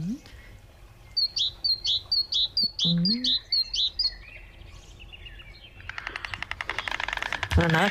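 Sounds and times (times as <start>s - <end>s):
wild bird singing bright sharp notes in a wetland reserve: 0.2s - 7.2s
speech: 2.8s - 3.4s, 7.6s - 7.8s.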